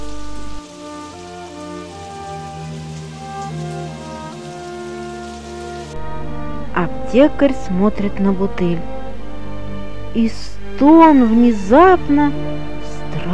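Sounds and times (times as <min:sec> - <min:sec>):
heavy rain pouring: 0:00.0 - 0:06.6
sustained musical tones: 0:00.0 - 0:13.3
speech: 0:06.8 - 0:09.0, 0:10.1 - 0:12.7.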